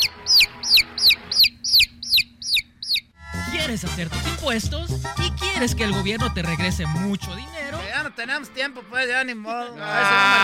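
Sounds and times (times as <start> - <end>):
chicken clucking: 0.0 - 3.0
speech: 3.7 - 10.4.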